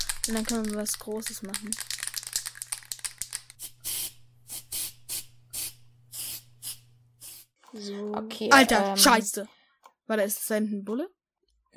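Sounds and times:
spray paint can being shaken: 0:00.0 - 0:07.6
speech: 0:00.2 - 0:01.9, 0:07.8 - 0:11.7
spray paint hissing as a graffiti tag is sprayed onto a wall: 0:02.2 - 0:07.6.

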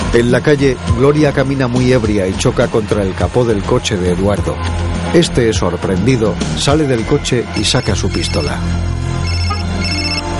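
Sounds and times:
speech: 0:00.1 - 0:09.2
car telephone ringing inside a parked car: 0:06.9 - 0:08.6, 0:09.2 - 0:10.3.

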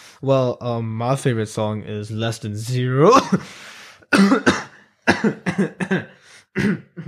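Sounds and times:
speech: 0:00.2 - 0:04.6, 0:05.2 - 0:05.7
person coughing harshly: 0:03.1 - 0:07.0.

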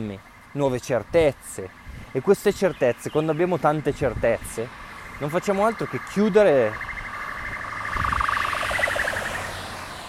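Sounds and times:
speech: 0:00.0 - 0:06.9
ambulance siren wailing outside: 0:05.0 - 0:10.0.

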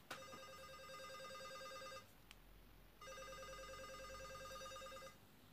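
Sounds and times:
mobile phone ringing with warbling electronic tone: 0:00.1 - 0:02.1, 0:03.0 - 0:05.2.

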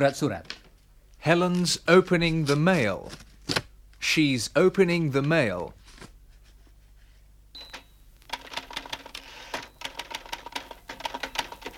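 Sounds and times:
speech: 0:00.0 - 0:00.6, 0:01.2 - 0:05.8
mechanical typewriter keystrokes: 0:08.3 - 0:11.7.

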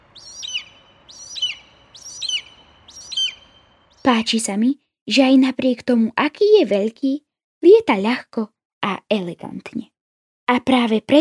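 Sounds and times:
golden eagle giving high thin yelping calls: 0:00.0 - 0:04.2
speech: 0:04.1 - 0:09.9, 0:10.5 - 0:11.1.

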